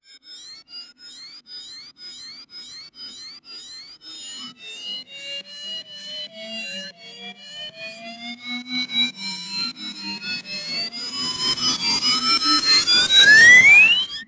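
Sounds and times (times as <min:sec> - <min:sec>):
medieval robot powering up: 0:04.2 - 0:14.2.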